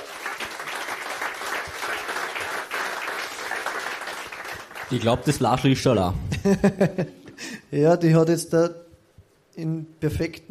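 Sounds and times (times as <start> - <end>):
audience applause: 0.0 - 5.7
speech: 4.9 - 8.8, 9.6 - 10.4
laughter: 6.2 - 7.4.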